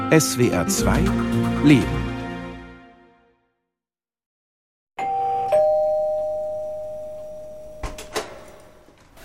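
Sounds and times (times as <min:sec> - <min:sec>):
speech: 0:00.1 - 0:02.1
two-note doorbell ding-dong at an apartment door: 0:05.0 - 0:08.5.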